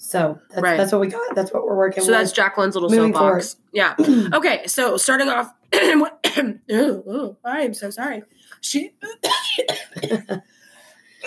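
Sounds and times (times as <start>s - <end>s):
speech: 0.1s - 10.6s
person coughing harshly: 5.8s - 6.6s, 9.1s - 10.4s.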